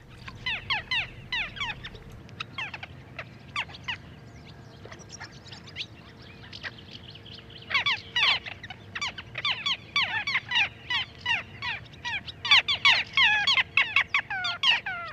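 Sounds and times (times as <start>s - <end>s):
Little Gull flight calls in strong wind: 0.0s - 4.0s, 7.7s - 15.1s
steady low hum: 0.0s - 15.1s.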